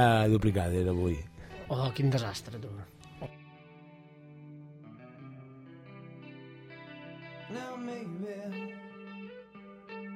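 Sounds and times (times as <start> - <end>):
speech: 0.0 - 3.3
rock song with effects-heavy guitar chords and steady bass on the radio: 4.6 - 10.1
male vocal in a rock song: 7.5 - 9.0.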